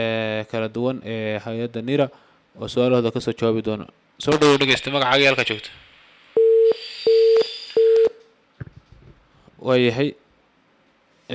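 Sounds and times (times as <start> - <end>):
speech: 0.0 - 5.9, 9.6 - 10.2
electronic beeps on a telephone line after the caller cuts off: 6.4 - 8.2.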